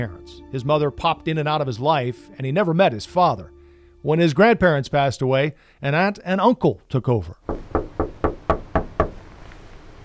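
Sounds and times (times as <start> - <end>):
speech: 0.0 - 7.4
firm knocks on the front door of a house: 7.5 - 9.2.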